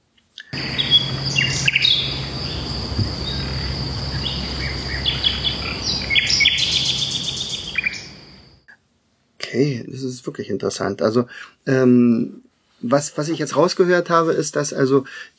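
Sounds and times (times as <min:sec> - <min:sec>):
low hum: 0:00.6 - 0:08.4
migratory songbird singing in short bright chirping phrases: 0:00.6 - 0:08.6
steady high insect or cricket drone: 0:00.6 - 0:08.6
speech: 0:09.6 - 0:15.3.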